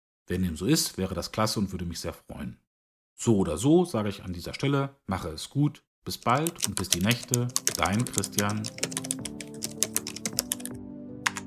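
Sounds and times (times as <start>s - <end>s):
speech: 0.3s - 9.0s
typing on a computer keyboard: 6.2s - 10.7s, 11.3s - 11.4s.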